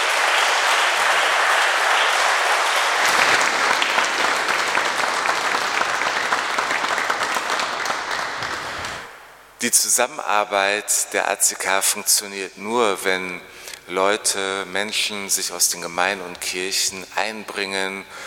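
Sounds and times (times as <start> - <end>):
audience applause at a church community gathering: 0.0 - 9.2
speech: 9.6 - 18.2.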